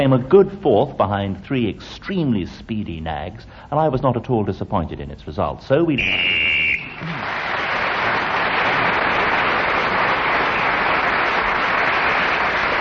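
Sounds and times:
speech: 0:00.0 - 0:08.3
short sharp whistle blast blown to end the round: 0:05.9 - 0:07.2
crowd noise: 0:05.9 - 0:12.7
loud sustained applause: 0:06.8 - 0:12.7.

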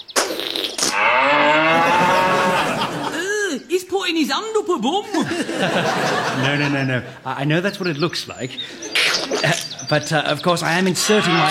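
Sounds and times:
cow in labour mooing while a calf is pulled out with a rope: 0:00.9 - 0:02.8
laughter: 0:01.7 - 0:03.6, 0:04.9 - 0:07.4, 0:08.4 - 0:11.4
speech: 0:04.1 - 0:11.4.

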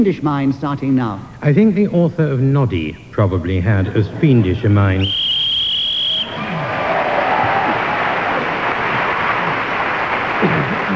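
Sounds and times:
speech: 0:00.0 - 0:05.2
shrill whistle: 0:05.0 - 0:06.5
large audience cheering loudly: 0:05.0 - 0:10.9
audience applause: 0:06.7 - 0:10.9.

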